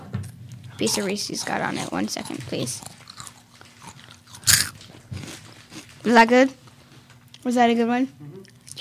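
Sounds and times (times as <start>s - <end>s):
speech: 0.8s - 3.0s, 6.1s - 6.6s, 7.4s - 8.4s
someone biting into a crunchy snack: 0.8s - 6.2s.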